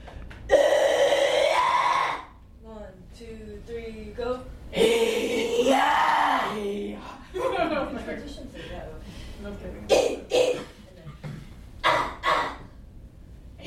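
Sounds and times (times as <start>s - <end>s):
metal choir screaming extreme vocals in a class: 0.5s - 2.3s, 4.8s - 6.8s
wailing vocal tones: 0.5s - 2.4s, 4.7s - 7.1s, 11.8s - 12.7s
laughter: 7.1s - 8.9s.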